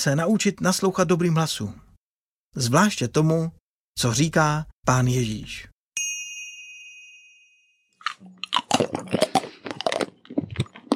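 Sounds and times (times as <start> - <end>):
speech: 0.0 - 1.9, 2.5 - 5.7, 8.8 - 9.3
ringing chime: 6.0 - 8.0
loud crunchy chewing close to microphone: 8.0 - 10.9.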